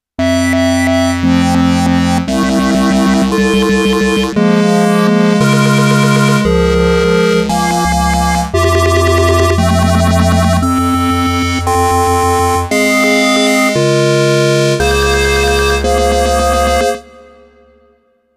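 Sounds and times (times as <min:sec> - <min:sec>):
stochastic FM synthesizer tones: 0:00.2 - 0:18.1.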